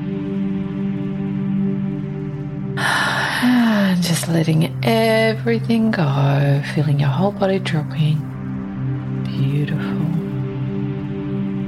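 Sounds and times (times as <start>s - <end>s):
steady low ambient music drone: 0.0s - 11.6s
deep airy healing breath drawn in through the nose: 2.8s - 3.6s
speech: 4.0s - 8.3s, 9.4s - 10.0s.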